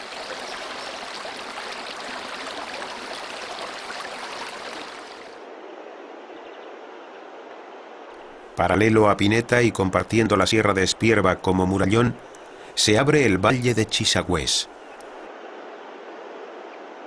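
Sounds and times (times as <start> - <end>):
water rushing and splashing over rocks: 0.0 - 5.4
speech: 8.6 - 14.8.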